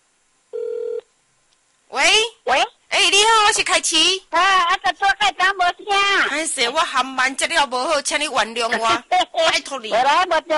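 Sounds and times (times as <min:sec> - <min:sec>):
faint hiss: 0:00.0 - 0:10.5
single mid-pitched telephone tone: 0:00.6 - 0:01.0
speech: 0:03.6 - 0:10.5.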